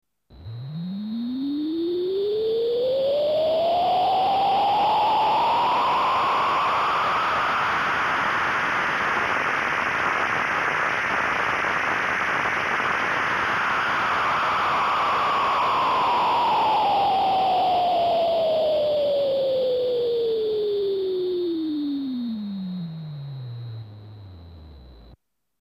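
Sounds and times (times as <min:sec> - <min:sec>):
synth noise: 0:00.3 - 0:25.2.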